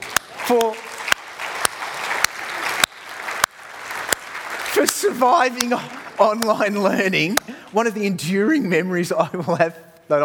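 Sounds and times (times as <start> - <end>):
auditorium audience applause: 0.0 - 8.0
speech: 0.5 - 0.8, 4.8 - 10.2.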